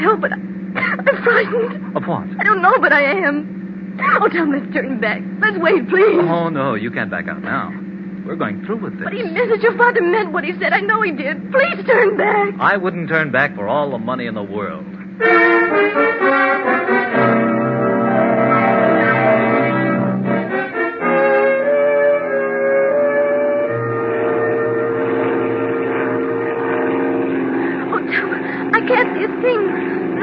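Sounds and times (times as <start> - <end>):
speech: 0.0 - 0.6, 1.2 - 16.8
small airplane engine droning as it throttles back to land: 0.0 - 30.2
laughter: 0.8 - 2.2, 5.5 - 6.8.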